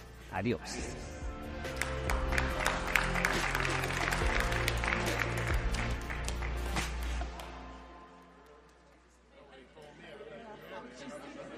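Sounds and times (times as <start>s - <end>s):
loud music with a deep sustained bass: 0.0s - 7.5s
speech: 0.3s - 1.1s
audience clapping: 1.5s - 9.3s.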